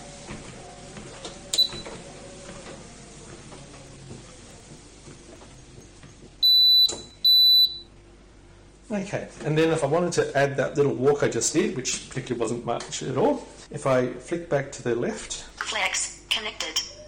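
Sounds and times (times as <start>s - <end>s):
treadmill beeping during a walk: 0.1s - 2.7s, 4.7s - 8.0s
speech: 8.9s - 15.9s.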